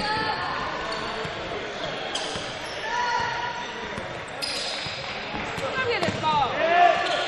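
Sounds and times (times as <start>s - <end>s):
crowd noise: 0.0s - 7.2s
basketball dribbled on a court during a game: 4.8s - 6.3s.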